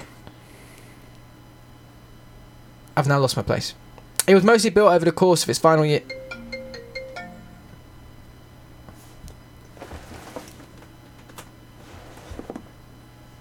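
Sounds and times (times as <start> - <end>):
hum: 0.0 - 13.3
speech: 3.0 - 6.2
phone ringtone for an incoming call with rapid beeping notes: 6.0 - 7.9
rustling and handling noises: 8.9 - 12.7.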